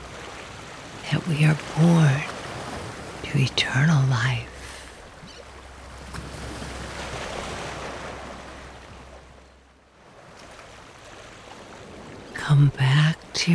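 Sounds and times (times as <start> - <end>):
slow gentle waves rolling: 0.0 - 13.5
speech: 1.1 - 2.3, 3.3 - 4.5, 12.5 - 13.5
low hum: 3.0 - 10.0.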